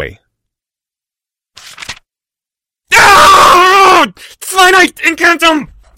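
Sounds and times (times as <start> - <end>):
speech: 0.0 - 0.2, 4.0 - 5.9
person screaming in pain: 2.9 - 4.2.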